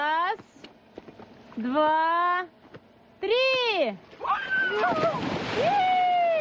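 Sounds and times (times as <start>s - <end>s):
speech: 1.6s - 2.6s, 3.2s - 5.9s
person in arctic suit splashing into icy winter water in Perm: 4.6s - 6.4s.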